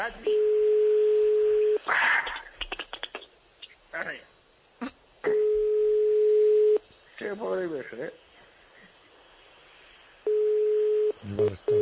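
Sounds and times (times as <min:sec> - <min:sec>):
speech: 0:00.0 - 0:00.5, 0:07.3 - 0:08.3, 0:11.4 - 0:11.7
telephone ringing tone while placing a call: 0:00.3 - 0:01.8, 0:05.3 - 0:06.8, 0:10.3 - 0:11.7.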